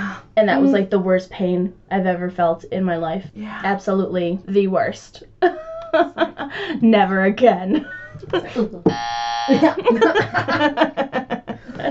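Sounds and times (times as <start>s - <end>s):
people chattering: 0.4s - 0.9s
speech: 0.4s - 11.2s
people bursting into laughter: 5.4s - 6.8s, 7.7s - 8.8s, 9.5s - 11.8s
loud harsh electronic buzzer: 8.9s - 9.8s.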